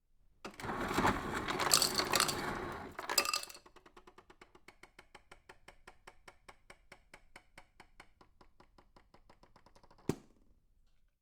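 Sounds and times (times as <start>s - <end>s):
ice machine dispensing ice into cup: 0.6s - 3.6s.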